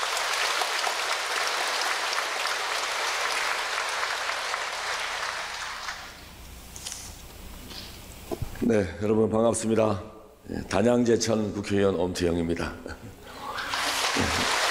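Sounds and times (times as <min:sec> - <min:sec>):
large audience applause welcoming a speaker at a temple building dedication ceremony: 0:00.0 - 0:06.2, 0:13.4 - 0:14.6
speech: 0:08.7 - 0:13.1.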